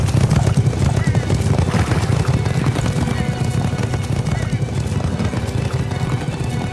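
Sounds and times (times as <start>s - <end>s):
red horse's hooves clip-clopping at a fast pace: 0.0s - 6.7s
horse neighing: 0.9s - 6.6s.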